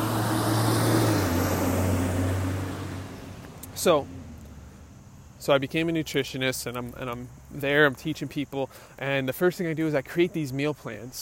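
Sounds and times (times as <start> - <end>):
heavy truck engine rumbling past: 0.0 - 6.0
speech: 3.8 - 4.2, 5.4 - 11.2.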